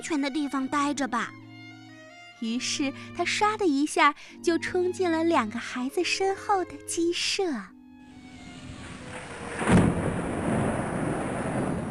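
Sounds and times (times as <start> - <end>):
speech: 0.0 - 1.4, 2.4 - 7.7
low rumbling storm noise: 8.3 - 11.8
thunderclap: 8.4 - 11.8
heavy rain: 8.5 - 11.8.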